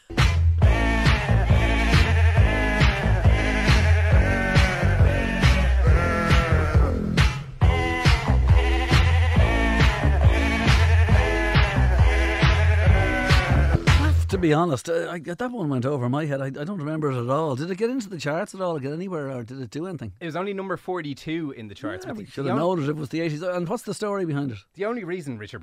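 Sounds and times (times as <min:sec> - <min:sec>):
steady thumping beat and bass: 0:00.0 - 0:14.4
sheep bleats pitched into a bouncy novelty song melody: 0:00.6 - 0:14.0
speech: 0:14.4 - 0:25.6.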